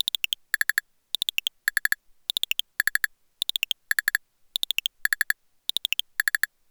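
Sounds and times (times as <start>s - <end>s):
Wii game console timer: 0.0s - 6.5s.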